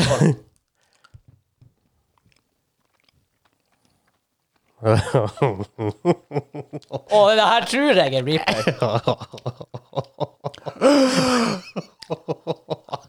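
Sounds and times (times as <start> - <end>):
speech: 0.1 - 0.4, 4.8 - 13.0
chewing a hot chili snack: 0.5 - 4.8
laughter: 4.8 - 13.0.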